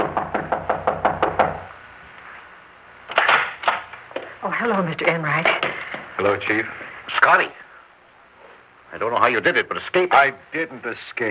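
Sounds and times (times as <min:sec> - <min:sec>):
firm raps on a wooden door: 0:00.0 - 0:01.7
speech: 0:04.5 - 0:07.6, 0:09.0 - 0:11.2.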